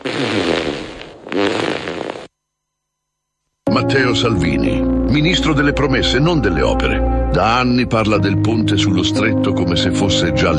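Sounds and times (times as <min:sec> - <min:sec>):
loud fart: 0:00.0 - 0:02.3
speech: 0:03.8 - 0:10.5.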